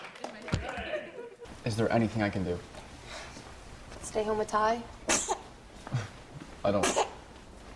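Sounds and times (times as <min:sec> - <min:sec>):
laughter: 0:00.6 - 0:01.6
speech: 0:01.7 - 0:02.7, 0:04.2 - 0:05.0, 0:05.9 - 0:06.1, 0:06.7 - 0:07.1
sneeze: 0:05.1 - 0:05.5, 0:06.8 - 0:07.2.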